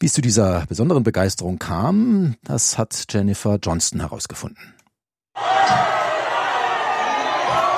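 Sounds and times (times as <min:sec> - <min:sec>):
speech: 0:00.0 - 0:04.8
Indonesian football fans roaring and cheering in made-up German: 0:05.4 - 0:07.7.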